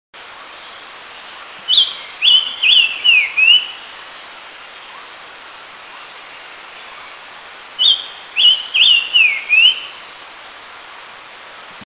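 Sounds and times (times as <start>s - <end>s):
Silver-eared Mesia calling in Eaglenest India: 0.5s - 5.2s, 6.8s - 10.9s.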